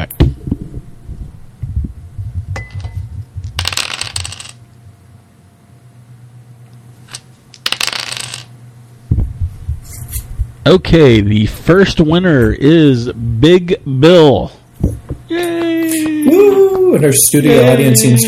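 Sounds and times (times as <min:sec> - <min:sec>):
low steady hum: 0:00.0 - 0:18.2
dice rattling and clattering: 0:03.4 - 0:04.6, 0:07.1 - 0:08.5
speech: 0:10.7 - 0:14.6, 0:15.3 - 0:18.2.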